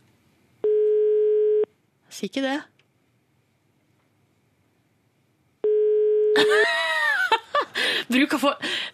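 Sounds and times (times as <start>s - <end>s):
telephone ringback tone from a call to a public phone booth: 0.6s - 1.7s, 5.6s - 6.4s
speech: 2.1s - 2.7s, 8.1s - 8.9s
laughter: 6.4s - 7.8s.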